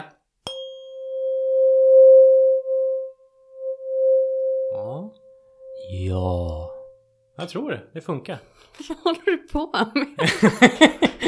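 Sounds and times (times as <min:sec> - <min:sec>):
tuning fork struck with a sharp metallic tap: 0:00.4 - 0:07.4
speech: 0:07.4 - 0:11.2
laughter: 0:10.1 - 0:11.2.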